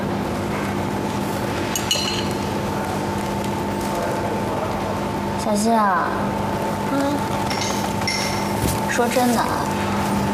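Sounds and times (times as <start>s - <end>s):
noisy room hum: 0.0s - 10.3s
glasses clinking in a toast: 1.8s - 2.4s, 7.5s - 8.6s
speech: 5.4s - 7.3s, 9.0s - 9.7s.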